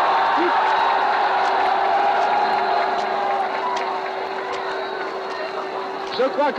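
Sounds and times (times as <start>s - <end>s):
people in a crowd shouting: 0.0s - 5.5s
large outdoor crowd cheering in the street: 0.0s - 6.5s
speech: 6.2s - 6.5s.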